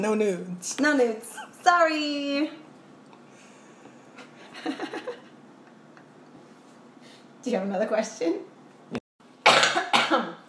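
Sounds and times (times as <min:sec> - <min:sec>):
speech: 0:00.0 - 0:02.6, 0:04.6 - 0:05.2, 0:07.4 - 0:08.5
harsh coughs: 0:09.4 - 0:10.4.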